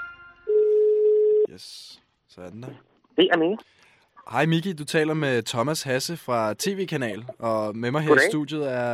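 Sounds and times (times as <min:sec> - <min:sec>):
telephone dial tone while calling: 0:00.5 - 0:01.5
speech: 0:02.4 - 0:03.8, 0:04.3 - 0:08.9.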